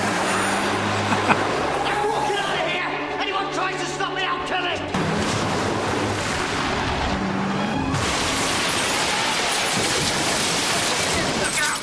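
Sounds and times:
car engine roaring while driven into front of building: 0.0 - 4.2, 4.8 - 11.0
crashing and grinding of car ramming building: 5.0 - 11.8.

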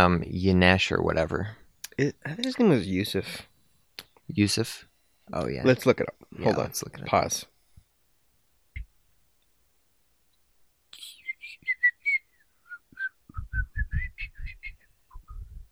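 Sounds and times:
speech: 0.0 - 3.5, 4.3 - 7.5
person whistling a tune while waiting: 11.0 - 15.4.

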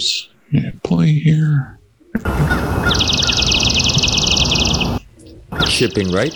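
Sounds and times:
speech: 0.0 - 1.8, 5.8 - 6.3
broad noisy outdoor noise: 0.0 - 6.3
swamp sparrow singing a fast staccato trill: 2.1 - 6.3.

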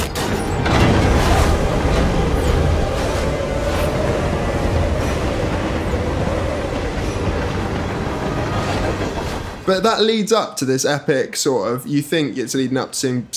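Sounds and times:
wheels clattering over rails: 0.0 - 10.1
train rumbling along the tracks: 0.0 - 10.5
speech: 9.7 - 13.3.

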